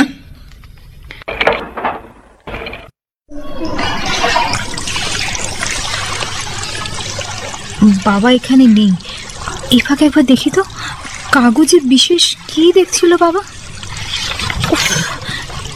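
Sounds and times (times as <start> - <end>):
knocks and clatters: 0.6 - 3.0
water pouring and splashing as someone bathes: 3.6 - 15.7
speech: 8.0 - 9.1, 9.7 - 13.6, 14.7 - 15.2.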